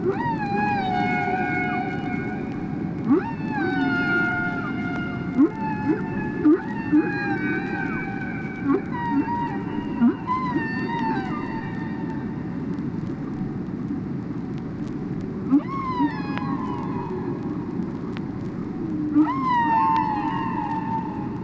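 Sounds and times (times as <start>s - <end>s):
whale calls of harmonic upsweeping whistles: 0.0s - 12.3s, 15.5s - 17.4s, 18.9s - 21.4s
steady low background noise: 0.0s - 21.4s.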